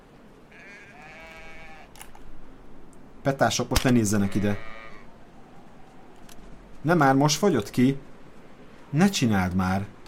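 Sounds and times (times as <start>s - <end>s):
goat bleating: 0.5s - 1.9s, 4.1s - 5.1s
speech: 3.2s - 4.8s, 6.8s - 8.1s, 8.9s - 9.9s
rustling noise: 5.6s - 9.0s.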